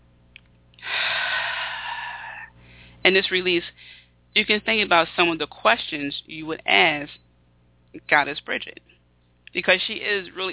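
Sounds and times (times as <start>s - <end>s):
long deep breath drawn in during a guided spiritual reflection: 0.8s - 3.0s, 3.8s - 4.2s
speech: 3.1s - 7.2s, 7.9s - 8.9s, 9.5s - 10.5s.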